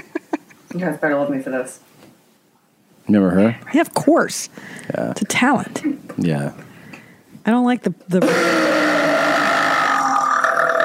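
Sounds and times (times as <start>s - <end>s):
speech: 0.7s - 1.9s, 3.1s - 6.7s, 7.4s - 8.7s
long loud burp: 8.2s - 10.8s.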